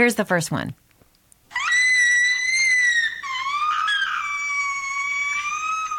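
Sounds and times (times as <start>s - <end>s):
girl screaming with excitement opening a present: 1.5s - 5.9s.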